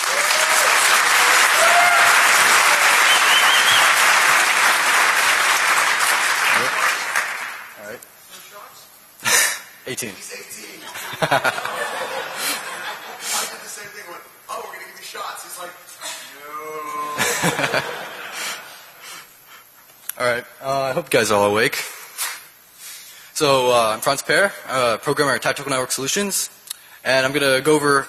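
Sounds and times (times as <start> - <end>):
large conference crowd clapping for a speaker: 0.0 - 7.8
speech: 10.0 - 10.5, 11.3 - 11.7, 21.1 - 21.9, 23.4 - 28.0
laughter: 10.8 - 13.5, 17.2 - 18.8.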